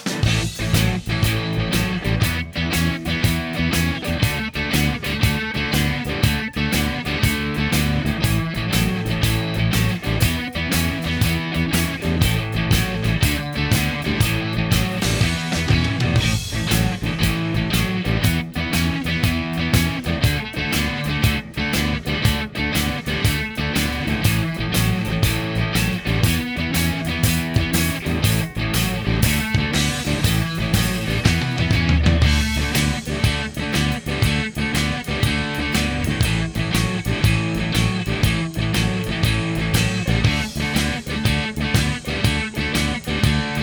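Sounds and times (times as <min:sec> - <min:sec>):
keyboard backing music: 0:00.2 - 0:43.6.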